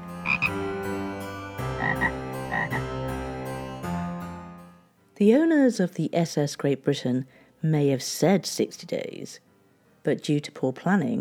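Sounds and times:
frog croaking: 0.2 - 0.6, 1.7 - 2.9
speech: 0.4 - 0.7, 5.2 - 9.4, 10.0 - 11.1.

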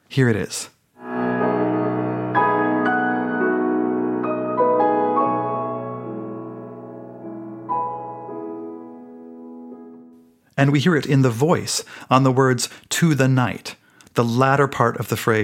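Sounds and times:
speech: 0.2 - 0.8, 10.6 - 15.4
descending piano motive over sustained lower chords: 1.0 - 10.2.

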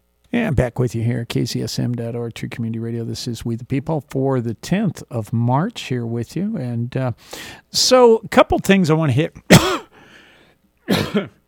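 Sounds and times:
speech: 0.4 - 9.8, 10.9 - 11.4
rough throat clearing: 9.5 - 9.9, 10.9 - 11.4
person coughing: 9.5 - 10.0, 10.9 - 11.4.

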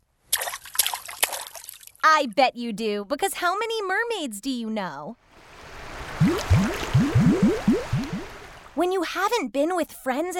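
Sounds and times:
water splashing: 0.3 - 2.0, 5.4 - 8.8
speech: 2.2 - 5.2, 8.8 - 10.3.

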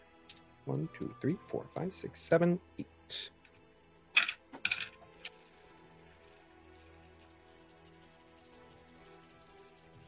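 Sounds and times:
speech: 0.7 - 3.4
handful of dice clattering onto a hard surface: 4.2 - 5.6.

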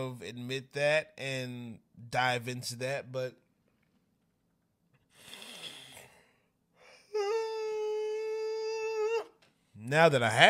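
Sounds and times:
speech: 0.0 - 3.4, 9.8 - 10.4
adult yawning: 6.9 - 9.4.

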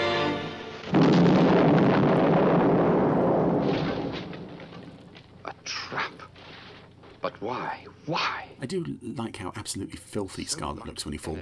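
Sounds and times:
bomb device exploding: 0.7 - 5.4
speech: 7.4 - 11.4.

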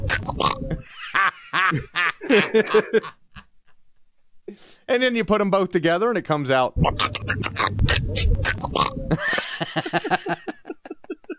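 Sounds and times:
person imitating a cartoon duck voice: 0.0 - 0.7, 6.8 - 9.0
laughter: 0.7 - 3.5, 9.1 - 11.3
speech: 1.7 - 3.2, 4.5 - 10.5.

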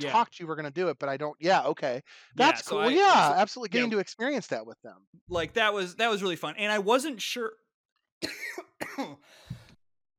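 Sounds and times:
speech: 0.0 - 7.6, 8.2 - 9.5
man coughing: 8.2 - 9.2.

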